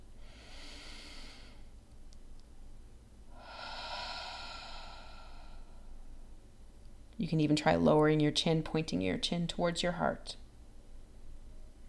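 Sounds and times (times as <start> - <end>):
slow deep breath: 0.2 - 1.7, 3.3 - 6.1
speech: 7.2 - 10.4.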